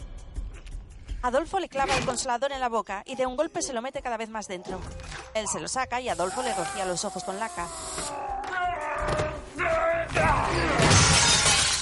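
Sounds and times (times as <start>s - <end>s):
speech: 1.2s - 8.3s
raised voices: 6.1s - 10.9s
struggle sounds of a fight: 6.1s - 11.7s
glass window shattering as a man is thrown against it during a fight: 10.7s - 11.7s.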